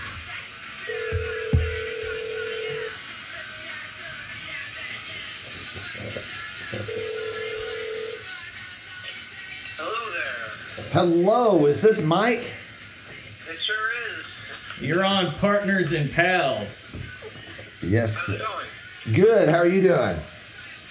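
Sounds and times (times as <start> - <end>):
phone ringback tones: 0.9 - 3.0, 6.8 - 8.3
speech: 11.0 - 12.5, 14.9 - 16.8, 17.9 - 20.3.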